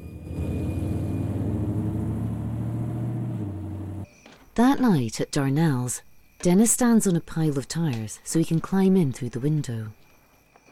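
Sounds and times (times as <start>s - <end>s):
parked car engine running: 0.0s - 4.1s
speech: 4.6s - 10.0s.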